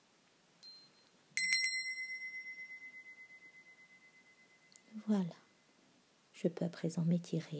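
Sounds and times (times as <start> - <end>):
small meditation bell struck: 0.6 - 5.6
speech: 5.0 - 5.4, 6.4 - 7.5.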